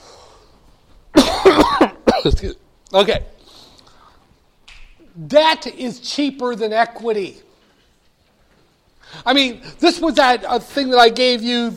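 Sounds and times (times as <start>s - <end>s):
person coughing: 1.2s - 2.6s
speech: 2.2s - 3.4s, 5.2s - 7.4s, 9.1s - 11.7s.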